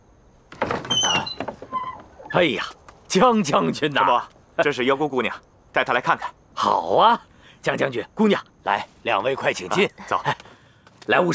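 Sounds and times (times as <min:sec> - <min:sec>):
door scraping and rattling open: 0:00.5 - 0:02.4
speech: 0:02.3 - 0:10.5, 0:11.1 - 0:11.3.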